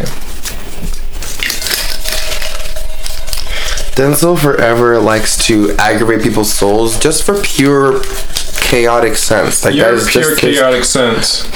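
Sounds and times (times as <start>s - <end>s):
slip of paper crinkling and rustling: 0.0s - 2.6s
speech: 4.0s - 11.5s.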